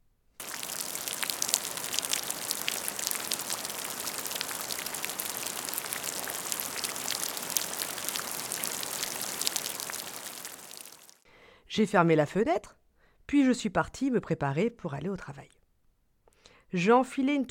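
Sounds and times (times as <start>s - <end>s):
rainwater from a gutter outlet splashing into a puddle during heavy rain: 0.4s - 11.2s
speech: 11.8s - 15.6s, 16.7s - 17.4s.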